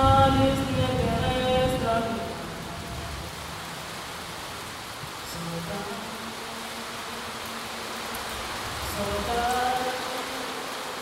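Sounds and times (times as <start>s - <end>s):
heavy rain drumming on a tin roof: 0.0s - 11.0s.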